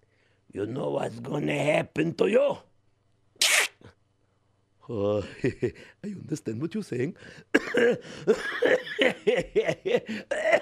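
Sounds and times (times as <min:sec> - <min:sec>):
speech: 0:00.5 - 0:02.7, 0:04.9 - 0:10.6
laughter: 0:05.2 - 0:05.8, 0:07.6 - 0:10.6
coughing: 0:07.5 - 0:10.6.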